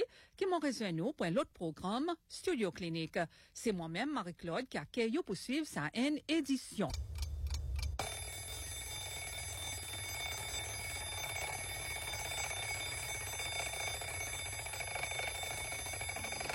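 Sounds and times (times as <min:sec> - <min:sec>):
speech: 0:00.3 - 0:07.2
alarm clock ringing: 0:08.0 - 0:16.5.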